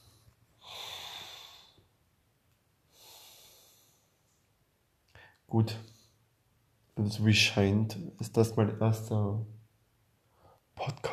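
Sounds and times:
deep breath in and out: 0.0 - 2.0, 2.9 - 4.2, 10.2 - 10.7
speech: 5.5 - 5.9, 7.0 - 9.6, 10.8 - 11.1.

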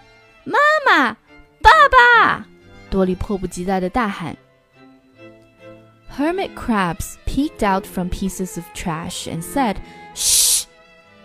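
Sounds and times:
speech: 0.4 - 1.2, 1.9 - 4.4, 6.2 - 10.7
shushing hiss: 10.2 - 10.7.

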